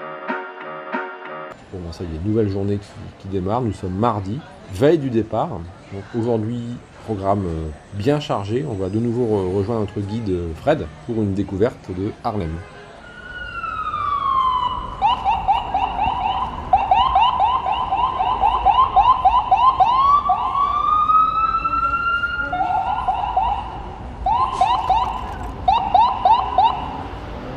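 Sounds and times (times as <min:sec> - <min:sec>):
street noise: 0:00.0 - 0:27.5
speech: 0:01.7 - 0:12.7
emergency vehicle siren in short bursts: 0:13.0 - 0:27.1.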